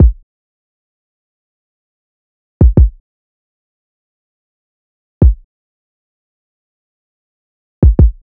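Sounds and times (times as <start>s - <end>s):
kick drum loop: 0.0s - 0.2s, 2.6s - 3.0s, 5.2s - 5.5s, 7.8s - 8.2s.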